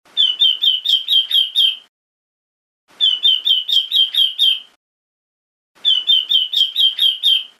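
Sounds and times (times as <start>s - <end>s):
female European robin: 0.1s - 1.9s, 2.9s - 4.8s, 5.8s - 7.5s.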